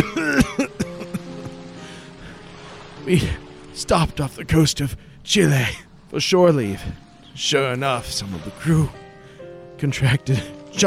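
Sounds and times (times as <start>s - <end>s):
person coughing: 0.0s - 1.2s
throat clearing: 0.0s - 1.2s
speech: 3.1s - 9.0s, 9.8s - 10.8s.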